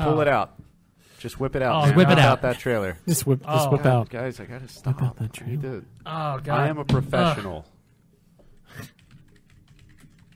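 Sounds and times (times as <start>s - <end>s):
speech: 0.0s - 0.6s, 1.2s - 7.7s, 8.7s - 9.0s
typing on a computer keyboard: 8.8s - 10.3s.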